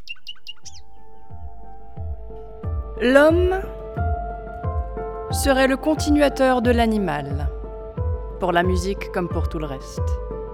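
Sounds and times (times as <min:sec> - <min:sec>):
bird singing: 0:00.0 - 0:03.3
soft regular low thumps: 0:00.8 - 0:10.5
speech: 0:03.0 - 0:03.8, 0:05.4 - 0:07.5, 0:08.4 - 0:10.4.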